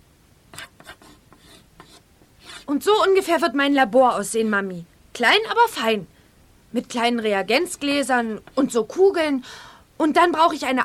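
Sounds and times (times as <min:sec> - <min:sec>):
pencil strokes scratching across paper while drawing at a kitchen table: 0:00.6 - 0:02.7
speech: 0:02.7 - 0:06.1, 0:06.7 - 0:10.8.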